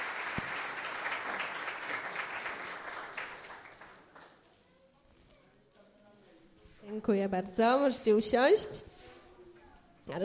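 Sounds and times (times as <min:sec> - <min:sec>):
audience clapping: 0:00.0 - 0:04.5
speech: 0:07.0 - 0:08.9.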